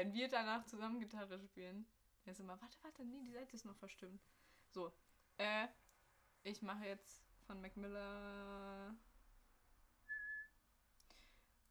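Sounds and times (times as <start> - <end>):
speech: 0.0 - 5.8, 6.4 - 9.1
whistled note: 10.1 - 10.5.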